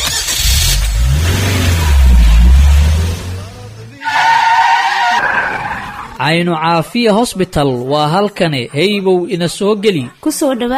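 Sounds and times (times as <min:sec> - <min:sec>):
car engine roar: 0:00.0 - 0:06.2
car tires skidding: 0:00.2 - 0:06.2
speech: 0:06.2 - 0:10.7.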